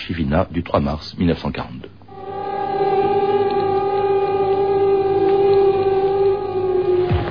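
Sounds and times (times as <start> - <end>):
speech: 0.1 - 2.0
air raid siren wailing: 2.1 - 7.3.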